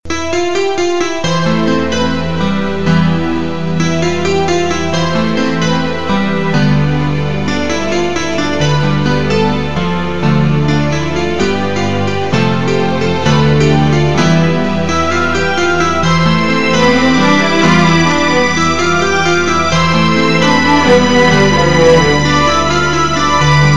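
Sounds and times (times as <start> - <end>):
romantic tone: 0.1 - 23.7.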